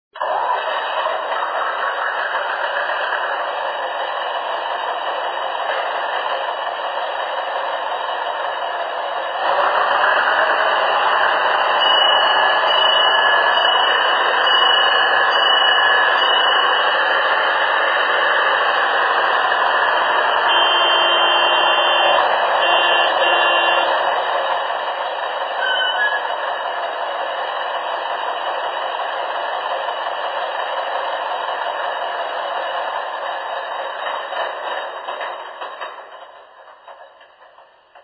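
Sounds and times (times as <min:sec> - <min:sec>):
LKM Feldbahn narrow-gauge locomotive: 0:00.1 - 0:38.0.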